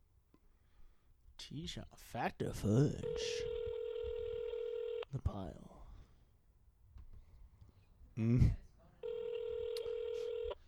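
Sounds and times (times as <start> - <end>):
speech: 1.5 - 3.6, 5.1 - 5.7, 8.2 - 8.6
steady buzzing phone ring tone: 3.0 - 5.0, 9.0 - 10.6
phone call dialing: 3.0 - 5.1, 9.0 - 10.6.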